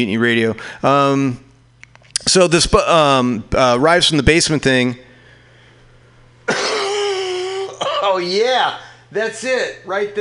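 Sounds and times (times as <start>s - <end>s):
speech: 0.0s - 1.4s, 2.3s - 5.0s, 8.1s - 10.2s
harsh throaty cough: 6.5s - 8.2s.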